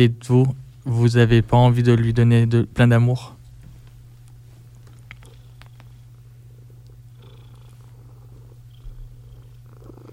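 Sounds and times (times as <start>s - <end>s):
speech: 0.0s - 3.4s
cat purring: 4.6s - 10.1s.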